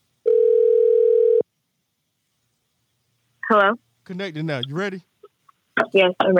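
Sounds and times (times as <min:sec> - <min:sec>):
telephone dial tone before a call: 0:00.3 - 0:01.4
speech: 0:03.5 - 0:05.1, 0:05.8 - 0:06.3.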